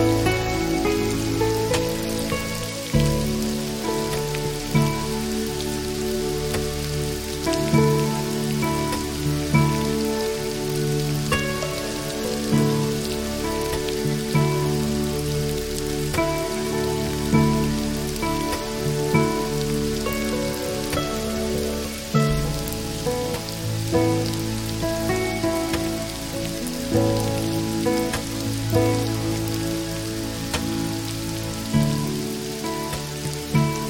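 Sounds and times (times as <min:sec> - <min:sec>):
gentle patter of raindrops: 0:00.0 - 0:33.8
small bright drips: 0:00.0 - 0:33.8
soft music with sustained low and middle chords: 0:00.0 - 0:33.8.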